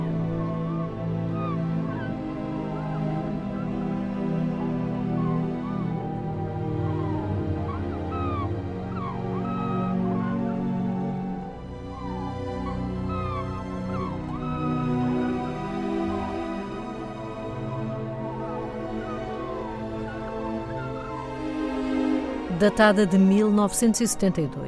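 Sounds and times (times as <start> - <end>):
recorded Arctic marsh birds chirping and whistling: 0.0 - 21.5
orchestral strings: 0.0 - 24.6
speech: 22.6 - 24.6.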